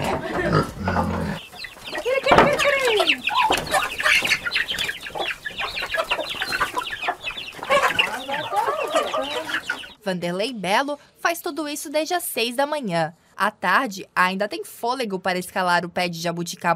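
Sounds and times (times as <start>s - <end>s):
several chickens clucking: 0.0s - 10.0s
speech: 10.1s - 16.7s.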